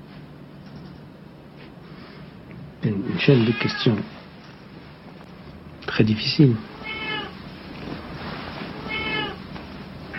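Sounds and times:
faint hum: 0.0s - 10.1s
speech: 2.8s - 4.2s, 6.0s - 6.7s
cat meowing: 3.4s - 4.1s, 6.6s - 7.4s, 8.7s - 9.4s.

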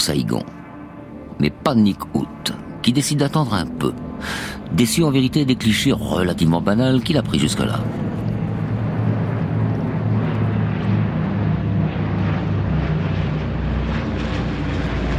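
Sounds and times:
speech: 0.0s - 0.6s, 1.4s - 8.0s
small observation plane engine droning as it dives: 0.0s - 15.1s
faint wind rush: 4.1s - 15.1s.

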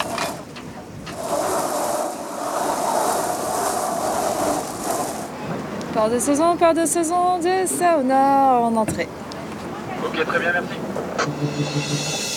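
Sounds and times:
mainsail rattling and whirring as it is lowered on a sailboat: 0.0s - 6.1s
speech: 6.0s - 9.2s, 10.2s - 10.8s, 11.5s - 12.2s.

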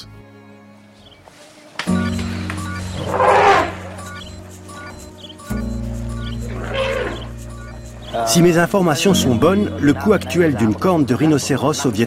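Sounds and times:
sustained musical drone: 0.0s - 10.2s
big cat roaring: 3.0s - 3.8s
speech: 8.2s - 12.0s.

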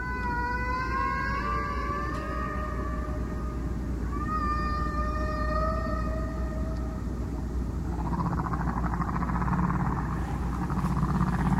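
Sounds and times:
humpback whale calls in slow harmonic sweeps: 0.0s - 11.5s.

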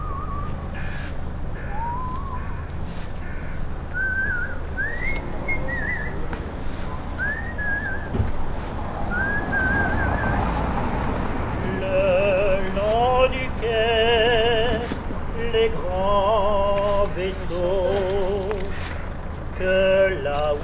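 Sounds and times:
street sweeper whistling a slow tune outdoors on Boulevard Casanova: 0.0s - 2.7s, 3.9s - 8.3s, 9.1s - 10.6s
street noise: 0.0s - 20.6s
traffic rumble: 0.0s - 20.6s.

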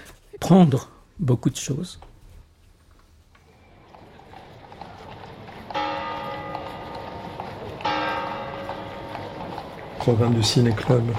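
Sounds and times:
speech: 0.4s - 2.1s, 10.1s - 11.1s
horses with carts clopping beside a church: 3.4s - 11.1s.

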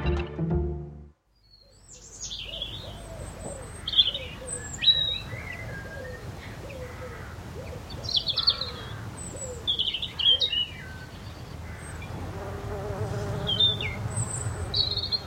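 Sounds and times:
birds chirping in an outdoor garden: 1.4s - 12.2s, 13.2s - 15.2s
bee buzzing in an outdoor garden: 12.2s - 15.2s.

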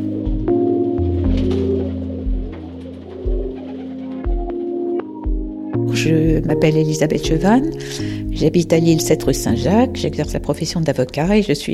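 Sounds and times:
pigeons cooing: 0.0s - 5.8s
speech: 6.0s - 11.7s.

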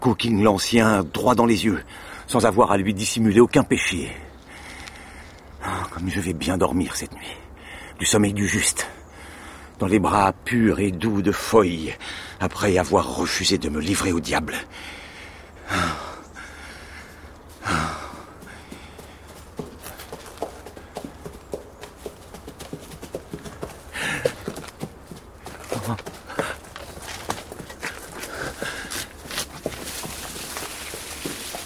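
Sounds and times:
speech: 0.0s - 4.3s, 5.6s - 7.4s, 8.0s - 9.0s, 9.8s - 15.0s, 15.7s - 16.1s
hooves of several horses clopping along a road: 17.6s - 31.6s.

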